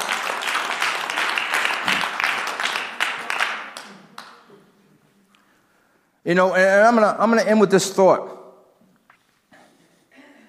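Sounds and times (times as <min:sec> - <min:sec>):
crowd applauding with hand claps: 0:00.0 - 0:04.4
speech: 0:06.3 - 0:08.4.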